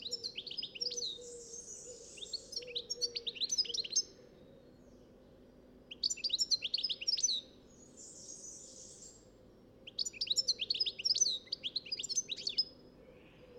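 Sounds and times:
European goldfinch song with tinkling twitters: 0:00.0 - 0:04.1, 0:05.9 - 0:09.2, 0:09.8 - 0:12.7.

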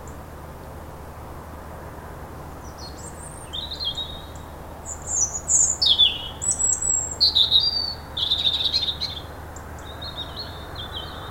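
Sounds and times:
European robin Erithacus rubecula singing: 0:02.6 - 0:11.2.

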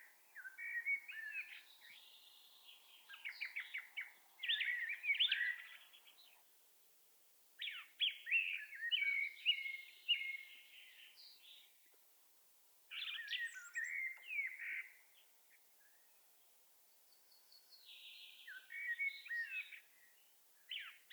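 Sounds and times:
common blackbird Turdus merula warbled song: 0:00.0 - 0:06.6, 0:07.6 - 0:12.0, 0:12.9 - 0:21.1.

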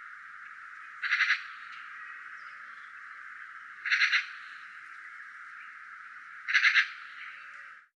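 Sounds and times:
constant hiss: 0:00.0 - 0:07.9
Eurasian magpie Pica pica giving dry rasping chatter: 0:01.0 - 0:01.8, 0:03.8 - 0:04.5, 0:06.4 - 0:07.2.

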